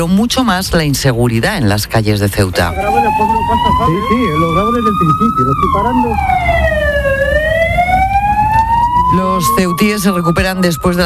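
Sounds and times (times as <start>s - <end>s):
speech: 0.0s - 6.8s, 9.1s - 11.0s
emergency vehicle siren on city streets during a night of unrest: 2.5s - 11.0s.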